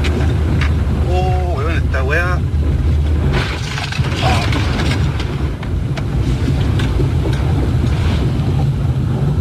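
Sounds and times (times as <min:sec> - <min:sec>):
rushing floodwater sweeping away a van: 0:00.0 - 0:09.4
debris knocking and clattering in floodwater: 0:03.3 - 0:08.0.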